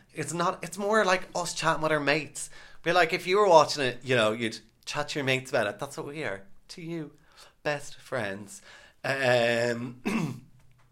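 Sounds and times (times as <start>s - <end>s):
speech: 0.2s - 10.4s
person coughing: 10.0s - 10.5s.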